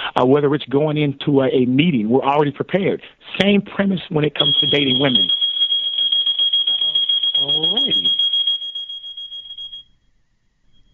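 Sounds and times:
speech: 0:00.2 - 0:05.4, 0:07.4 - 0:08.2
loud steady high-pitched hotel alarm tone: 0:04.4 - 0:10.0.

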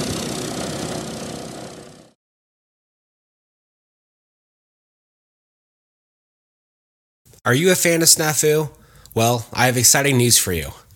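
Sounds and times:
bomber aircraft engines idling and roaring before takeoff: 0:00.0 - 0:02.2
speech: 0:07.4 - 0:10.9.

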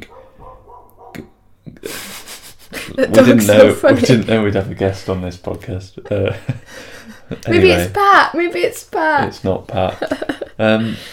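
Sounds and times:
neighbour's dog barking faintly, protective yapping: 0:00.0 - 0:01.3
laughter: 0:01.8 - 0:04.6, 0:06.0 - 0:07.9, 0:09.4 - 0:11.1
speech: 0:02.9 - 0:11.1.

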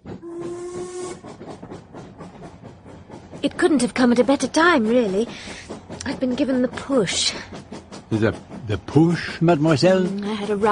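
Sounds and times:
steam locomotive pulling a boat train chuffing: 0:00.0 - 0:10.7
steam locomotive whistle blast: 0:00.2 - 0:01.4
hissing steam from a passing steam locomotive: 0:00.2 - 0:10.7
speech: 0:03.4 - 0:10.7.

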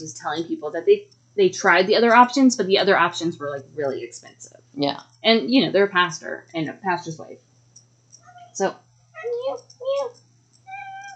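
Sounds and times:
speech: 0:00.0 - 0:07.5, 0:08.6 - 0:10.2
cat meowing: 0:10.7 - 0:11.1.

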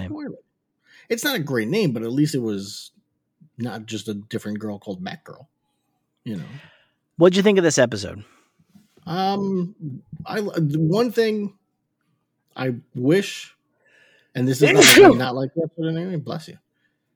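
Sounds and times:
speech: 0:01.0 - 0:03.0, 0:03.6 - 0:05.5, 0:06.2 - 0:08.4, 0:09.0 - 0:11.6, 0:12.6 - 0:13.6, 0:14.4 - 0:16.6
short voiced gasps and vocal noises: 0:13.9 - 0:15.2
loud sneeze into a microphone: 0:14.6 - 0:15.3.

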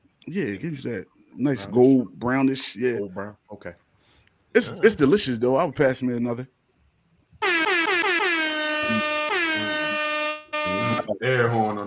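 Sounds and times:
speech: 0:00.2 - 0:03.8, 0:04.5 - 0:06.6, 0:11.1 - 0:11.8
loud blaring air horn blasts: 0:07.4 - 0:11.1.

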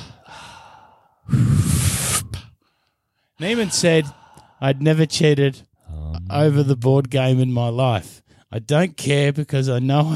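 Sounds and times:
deep inhale through the nose: 0:00.0 - 0:02.5
forceful breath out through the mouth: 0:00.0 - 0:02.6
speech: 0:03.4 - 0:05.7, 0:06.3 - 0:10.1.

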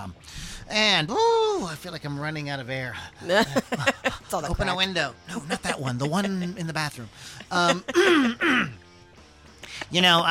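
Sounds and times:
speech: 0:00.0 - 0:08.8, 0:09.7 - 0:10.2
laughter: 0:03.2 - 0:08.8
man clearing his throat: 0:07.7 - 0:08.8.

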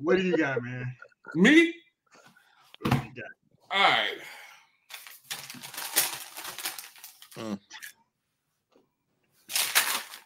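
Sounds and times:
speech: 0:00.0 - 0:01.8, 0:02.8 - 0:04.4, 0:07.4 - 0:07.6
paper crinkling and rustling: 0:04.9 - 0:07.4, 0:09.4 - 0:10.2.

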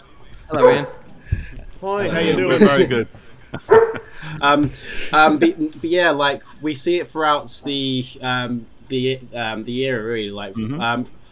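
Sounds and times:
speech: 0:00.5 - 0:01.0, 0:01.8 - 0:11.2
dog barking with whiny yelping: 0:00.5 - 0:01.1, 0:03.7 - 0:04.0
laughter: 0:00.6 - 0:06.8.

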